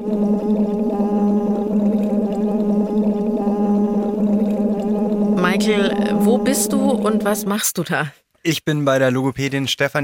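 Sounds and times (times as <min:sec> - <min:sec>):
voiced hum blown through a tube into water during speech-therapy warm-up: 0:00.0 - 0:07.6
speech: 0:05.6 - 0:10.0.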